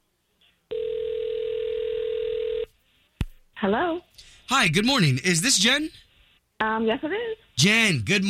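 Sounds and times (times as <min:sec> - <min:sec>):
telephone ringing tone on the line: 0:00.7 - 0:02.7
speech: 0:03.6 - 0:08.2.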